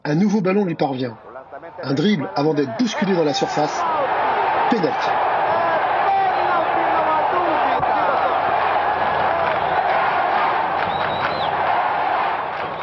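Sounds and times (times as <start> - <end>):
speech: 0.1 - 1.2, 1.8 - 4.1, 4.7 - 5.3
football stadium crowd roaring: 1.1 - 12.8
whistles in a football stadium crowd: 6.3 - 6.7, 9.4 - 11.6, 12.6 - 12.8.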